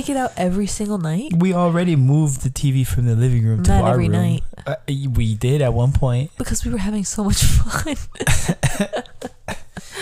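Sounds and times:
speech: 0.0s - 9.2s
sick man stifling coughs: 8.2s - 9.6s.

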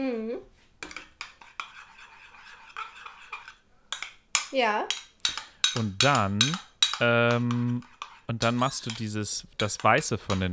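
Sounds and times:
eggs whisked in a bowl: 0.4s - 10.5s
speech: 4.5s - 5.0s, 5.7s - 10.5s.

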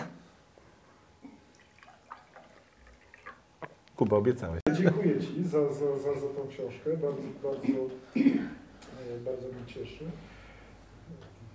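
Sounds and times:
water trickling into a glass: 1.4s - 3.5s
speech: 4.0s - 10.4s.

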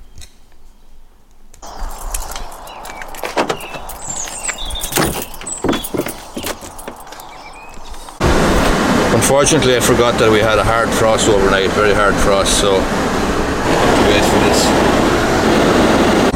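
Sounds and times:
road traffic passing after a hard overnight frost: 1.6s - 16.3s
scattered clanks and knocks: 2.9s - 7.4s
speech: 9.3s - 13.2s, 14.0s - 15.9s.

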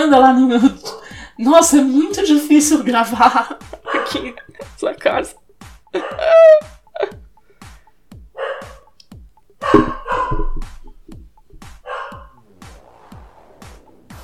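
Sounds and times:
speech: 0.0s - 7.2s, 9.6s - 10.4s
laughter: 3.2s - 4.9s, 6.0s - 7.2s
dog barking and yipping: 3.8s - 4.4s, 6.0s - 6.6s, 8.4s - 9.0s, 9.6s - 12.4s.

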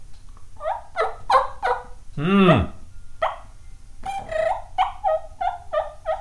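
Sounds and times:
turkey call imitating a wild turkey's yelps and gobble: 0.6s - 2.0s, 3.2s - 6.1s.

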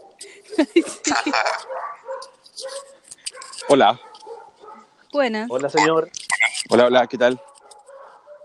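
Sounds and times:
several dogs barking and yipping: 0.0s - 5.0s, 6.8s - 8.4s
speech: 0.2s - 2.0s, 3.6s - 4.1s, 5.1s - 7.5s
laughter: 0.3s - 1.6s.

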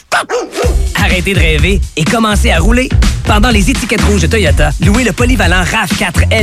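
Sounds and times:
dog barking, howling and grumbling: 0.1s - 0.9s
speech: 1.3s - 6.4s.

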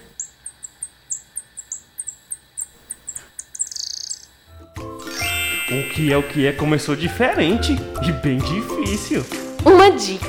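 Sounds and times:
high-pitched squeaky bat calls: 0.0s - 7.5s
speech: 5.7s - 10.2s.

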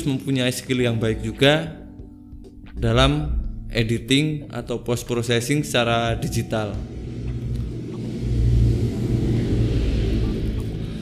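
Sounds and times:
speech: 0.0s - 1.8s, 2.8s - 7.0s
motorcycles passing by outside: 6.8s - 10.9s.

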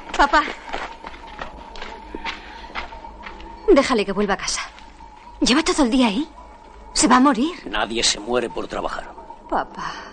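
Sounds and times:
quick running footsteps of a teenage girl: 0.0s - 5.8s
speech: 0.2s - 0.6s, 3.7s - 4.7s, 5.4s - 10.1s.

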